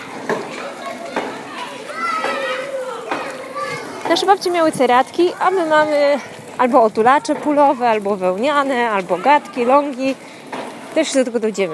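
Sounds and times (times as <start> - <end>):
young children shouting and squealing outdoors at a kindergarten: 0.0 - 8.2, 8.8 - 11.7
speech: 4.1 - 10.3, 10.9 - 11.7.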